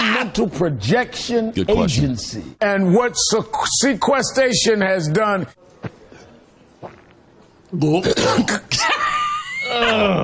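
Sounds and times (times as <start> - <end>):
speech: 0.3 - 5.7, 7.7 - 9.0, 9.7 - 10.2
person imitating a cat gagging and retching: 8.0 - 8.8
person imitating a cat coughing up a fur ball with hacking coughs: 8.0 - 8.9.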